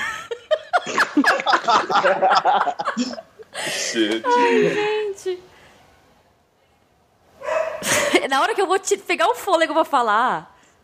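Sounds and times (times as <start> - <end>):
laughter: 0.0 - 5.0
speech: 1.6 - 5.5, 8.2 - 10.5
dog barking: 7.4 - 7.9.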